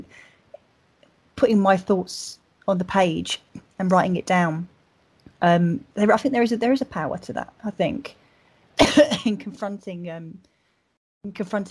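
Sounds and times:
speech: 1.4 - 4.7, 5.4 - 8.2, 9.0 - 10.5, 11.2 - 11.6
harsh cough: 8.8 - 9.4.

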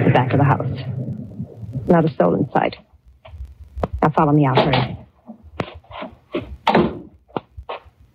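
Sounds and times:
speech: 0.1 - 0.9, 1.8 - 2.9, 4.1 - 5.0
wooden cellar door thudding and knocking: 6.7 - 7.1.

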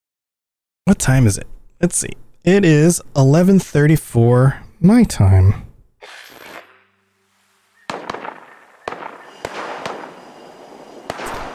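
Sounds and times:
speech: 0.9 - 6.2
video game gunshots: 7.8 - 11.5.

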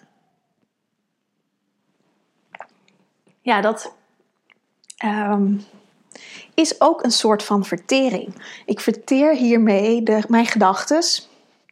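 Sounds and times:
person sipping water with a slurping gulp: 2.5 - 3.1
speech: 3.4 - 4.0, 5.0 - 11.3.

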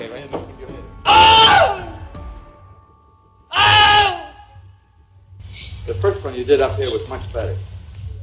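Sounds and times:
man screaming in pain: 1.0 - 2.1, 3.5 - 4.6
speech: 6.0 - 7.7.

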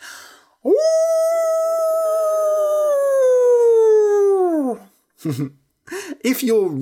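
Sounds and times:
person imitating a wolf howl: 0.6 - 4.9
speech: 5.2 - 5.6, 6.2 - 6.8.

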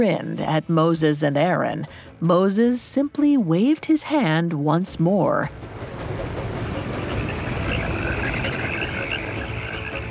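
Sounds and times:
speech: 0.0 - 5.8
chorus of many frogs croaking: 6.3 - 10.0.

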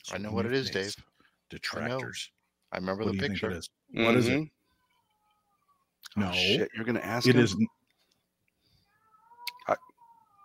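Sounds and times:
speech: 0.1 - 4.6, 6.1 - 7.8, 9.7 - 9.9
domestic cat meowing: 5.0 - 7.7, 8.9 - 10.4.

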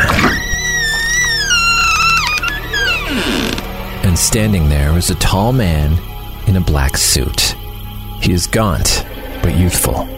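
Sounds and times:
squealing door hinge creaking as door swings slowly open: 0.0 - 3.8
speech: 4.3 - 7.6, 8.2 - 10.1.

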